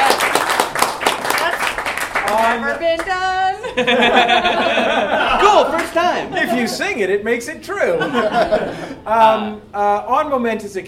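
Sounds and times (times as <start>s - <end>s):
studio audience applause: 0.0s - 3.0s
speech: 3.0s - 10.8s
laughter: 3.5s - 7.0s, 7.8s - 9.1s.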